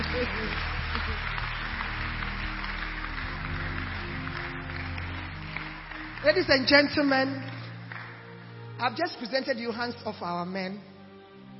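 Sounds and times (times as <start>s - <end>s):
audience applause: 0.0s - 8.8s
speech: 6.2s - 7.6s, 8.8s - 10.9s.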